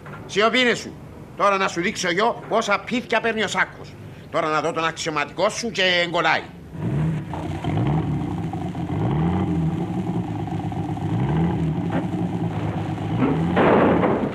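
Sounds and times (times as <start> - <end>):
speech: 0.3 - 6.8
car engine revving hard: 6.5 - 14.3.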